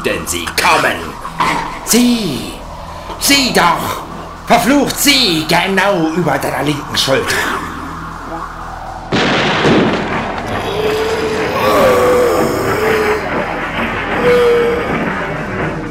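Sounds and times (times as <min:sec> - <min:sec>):
speech: 0:00.0 - 0:02.6, 0:03.2 - 0:07.7
faint wavering whine: 0:00.0 - 0:15.2
sustained rumbling roar: 0:00.0 - 0:15.9
gunshot in an old house: 0:09.1 - 0:10.6.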